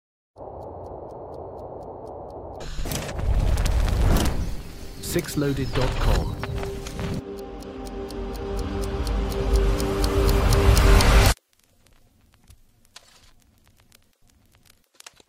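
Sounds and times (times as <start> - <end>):
wall clock ticking: 0.4 - 2.7, 6.5 - 11.4
faint scattered clicks: 0.4 - 15.2
speech: 5.2 - 6.4.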